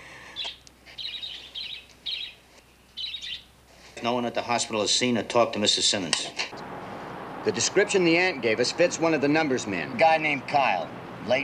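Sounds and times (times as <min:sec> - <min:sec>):
pet bird chirping: 0:00.4 - 0:03.5
speech: 0:04.0 - 0:06.8, 0:07.4 - 0:11.4.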